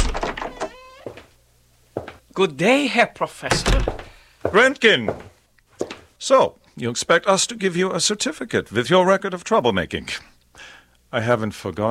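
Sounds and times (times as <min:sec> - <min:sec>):
door thunks and rattles: 0:00.0 - 0:01.0, 0:03.5 - 0:04.2
door creaking squeal: 0:00.0 - 0:01.3, 0:03.5 - 0:04.2
speech: 0:02.4 - 0:05.3, 0:06.2 - 0:11.8.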